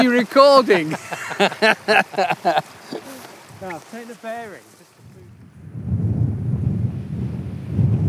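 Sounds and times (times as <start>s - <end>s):
laughter: 0.0s - 3.3s
speech: 0.0s - 4.8s
strong wind blowing across open fell: 4.9s - 8.0s.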